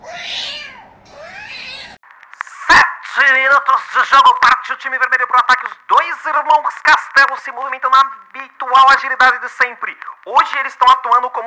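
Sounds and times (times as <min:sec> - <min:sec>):
cat meowing: 0:00.0 - 0:02.0
speech: 0:03.2 - 0:11.4.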